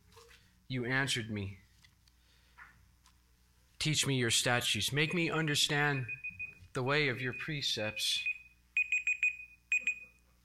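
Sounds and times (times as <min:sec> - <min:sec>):
speech: 0:00.7 - 0:01.6, 0:03.8 - 0:06.2, 0:06.8 - 0:08.3
phone alarm beeping in a pocket: 0:05.8 - 0:06.6, 0:07.2 - 0:10.2.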